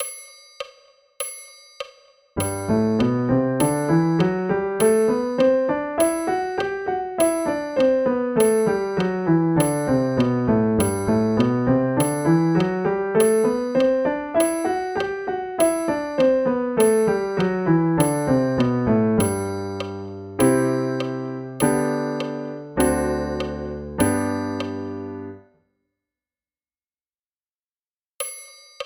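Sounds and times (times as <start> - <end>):
G major scale and arpeggio: 2.4 - 25.4.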